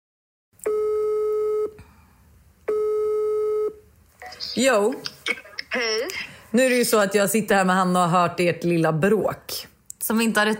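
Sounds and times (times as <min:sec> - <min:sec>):
outgoing phone call ringing tone: 0:00.7 - 0:01.8, 0:02.7 - 0:03.8
speech: 0:04.6 - 0:10.5.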